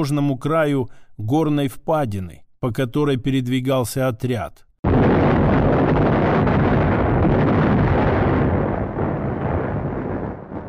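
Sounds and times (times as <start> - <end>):
speech: 0.0 - 4.6
double explosion echoing among mountains: 4.8 - 10.6.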